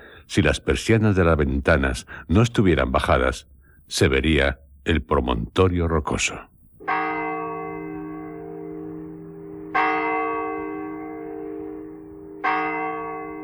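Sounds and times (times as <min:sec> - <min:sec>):
speech: 0:00.3 - 0:06.5
church clock bell striking the hour: 0:06.8 - 0:13.4.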